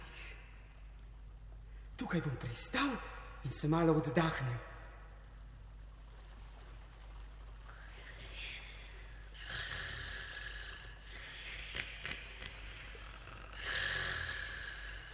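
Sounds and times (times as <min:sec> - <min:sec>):
speech: 0:02.0 - 0:04.7
sleeping three-headed dragon snoring: 0:09.4 - 0:15.1.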